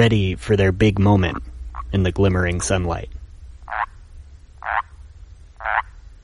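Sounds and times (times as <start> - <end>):
speech: 0.0 - 3.9
low constant rumble: 0.0 - 6.2
chorus of frogs croaking: 1.2 - 2.0, 3.2 - 6.2.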